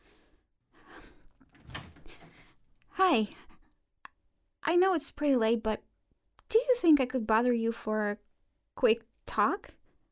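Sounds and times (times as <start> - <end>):
door creaking and scraping open: 1.4 - 2.5
speech: 3.0 - 3.4, 4.7 - 5.9, 6.5 - 9.8.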